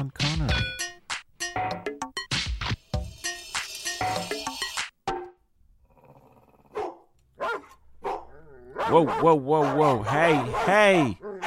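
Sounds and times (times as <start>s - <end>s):
speech: 0.0s - 0.5s, 8.9s - 11.2s
dogs barking in overlapping bursts: 6.7s - 11.4s.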